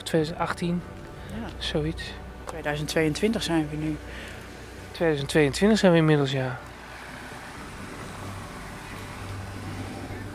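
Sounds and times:
speech: 0.1 - 4.4, 5.0 - 6.7
car engine rumble: 0.2 - 10.3
road hiss: 0.8 - 10.3.

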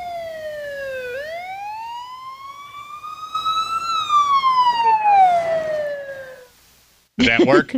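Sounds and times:
emergency vehicle siren wailing: 0.0 - 6.6
faint road noise: 2.4 - 6.6.

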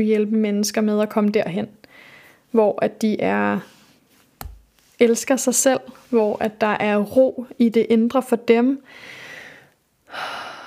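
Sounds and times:
speech: 0.0 - 3.8, 5.0 - 9.2
deep breath in and out: 1.9 - 2.5, 8.8 - 10.6.

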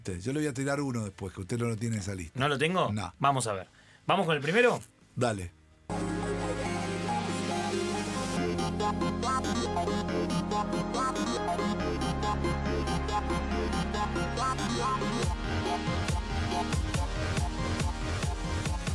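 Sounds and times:
speech: 0.0 - 6.2
electronic dance music DJ set with synth chords, bass line and driving beat: 5.9 - 18.9.

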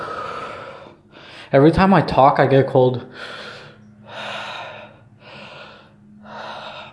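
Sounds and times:
deep rhythmic breathing exercise: 0.0 - 1.6, 3.0 - 6.9
speech: 1.4 - 3.5.

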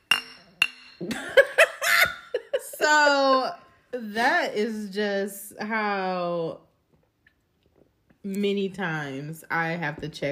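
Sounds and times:
glasses clinking together: 0.0 - 1.2
speech: 1.0 - 1.4, 2.9 - 6.7, 8.2 - 10.2
people laughing and chuckling: 1.1 - 2.9.

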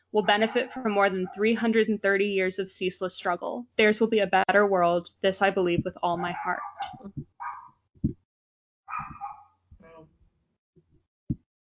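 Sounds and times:
speech: 0.1 - 7.3
dog barking and yelping: 0.2 - 1.4, 6.1 - 7.8, 8.9 - 9.6.

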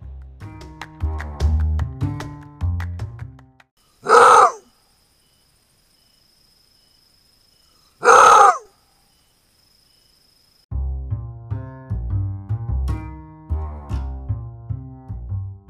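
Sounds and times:
music: 0.0 - 3.6, 10.8 - 15.6
maned wolf roar-barks: 4.0 - 4.6, 8.0 - 8.7.

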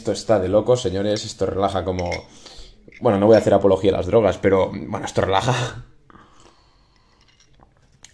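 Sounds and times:
speech: 0.0 - 5.9
person sipping hot pennyroyal-mint herbal tea: 6.1 - 8.1.

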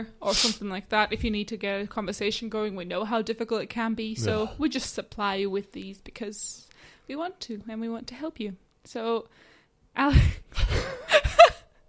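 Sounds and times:
speech: 0.0 - 11.6
big human yawn with groaning: 4.2 - 4.6.

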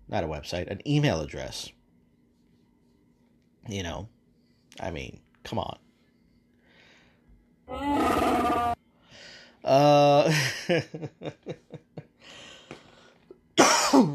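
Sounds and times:
speech: 0.1 - 1.8, 3.6 - 5.9, 7.7 - 8.7, 9.6 - 12.4
person coughing from a dry throat: 13.6 - 14.1.

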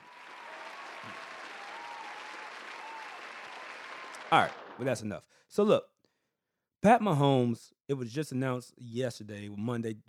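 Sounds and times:
recorded crowd clapping: 0.0 - 5.1
speech: 4.3 - 5.9, 6.8 - 10.0.

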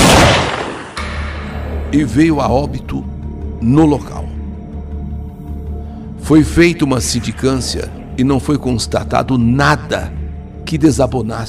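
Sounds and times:
loud pistol shot ringing into an echo: 0.0 - 1.6
sharp crack with a low rumbling tail: 0.0 - 1.9
speech: 1.9 - 4.2, 6.3 - 11.4.

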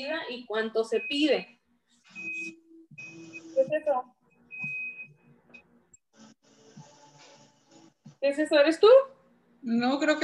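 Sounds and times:
speech: 0.0 - 1.6, 3.6 - 4.2, 8.2 - 10.2
washing machine electronic beep: 0.9 - 1.4, 2.1 - 3.7, 4.4 - 5.3.

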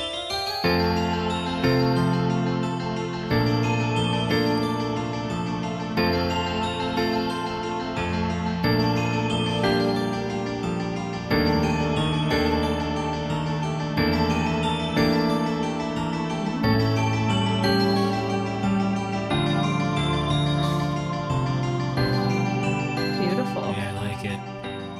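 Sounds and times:
Nintendo 64 video game music track from 2000: 0.6 - 24.9.

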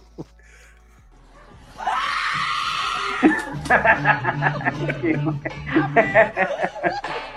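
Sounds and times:
woman screaming high-pitched in background of video: 1.7 - 3.6
rhythmic chuckling and laughter bursts: 3.1 - 7.3.

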